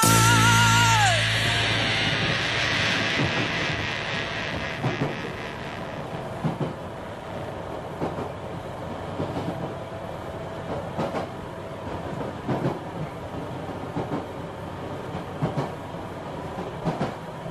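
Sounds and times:
constant low rumble of a train on railway tracks: 0.1s - 17.4s
train wheels clacking over rail joints: 10.7s - 14.3s, 14.9s - 15.8s, 16.5s - 17.3s.

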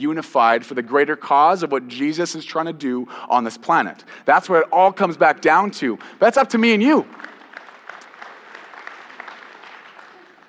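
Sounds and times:
speech: 0.0s - 7.3s
church audience clapping during a sermon: 5.8s - 10.4s.

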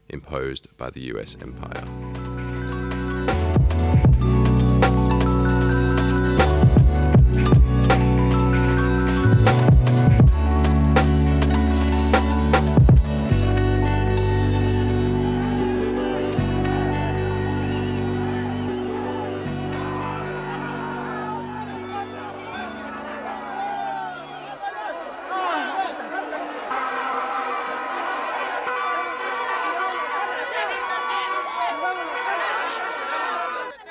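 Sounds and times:
crowd chatter in the streets of Guatemala during a presidential inauguration: 0.0s - 33.8s
speech: 0.1s - 2.5s
loud music with a heavy low beat: 1.8s - 15.7s
laughter: 13.4s - 33.8s.

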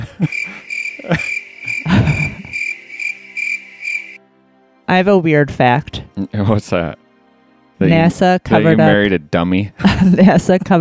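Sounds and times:
laughter: 0.0s - 2.6s, 8.6s - 9.1s, 9.8s - 10.7s
crickets chirping: 0.0s - 4.2s
speech: 0.2s - 0.4s, 1.0s - 1.3s, 4.9s - 7.0s, 7.8s - 10.7s.

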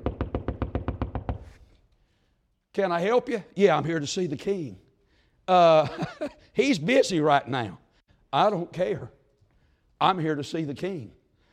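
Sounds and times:
firm knocks on a door: 0.0s - 1.5s
speech: 2.8s - 4.8s, 5.5s - 9.2s, 10.0s - 11.2s.

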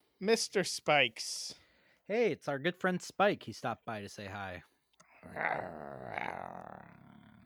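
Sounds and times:
speech: 0.3s - 7.1s
dog-like growl voiced by a person: 5.2s - 7.4s.

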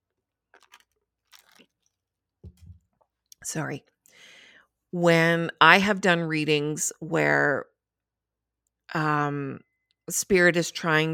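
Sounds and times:
slurping sips of a drink: 0.5s - 2.8s
soft low thud: 2.4s - 2.8s
speech: 3.4s - 3.9s, 4.9s - 7.7s, 8.9s - 11.1s.

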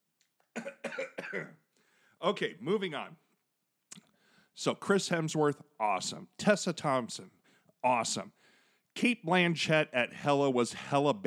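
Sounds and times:
person coughing: 0.6s - 1.6s
throat clearing: 0.6s - 1.6s
speech: 1.3s - 1.6s, 2.2s - 3.2s, 4.6s - 8.4s, 9.0s - 11.2s.

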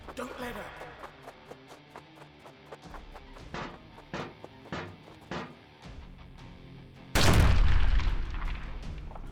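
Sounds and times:
loud explosion with heavy lingering rumble: 7.2s - 9.3s
sharp cannon shots: 7.2s - 9.3s.

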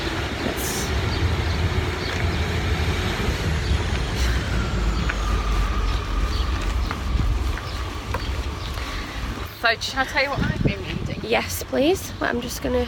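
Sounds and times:
train rumbling past near a station: 0.0s - 9.5s
speech: 9.7s - 10.6s, 11.3s - 12.8s.

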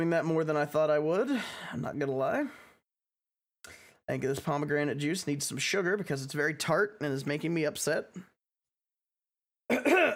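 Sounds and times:
speech: 0.0s - 2.6s, 3.6s - 8.3s
person giving a short raspy cough: 9.7s - 10.1s
throaty throat clearing: 9.7s - 10.1s.

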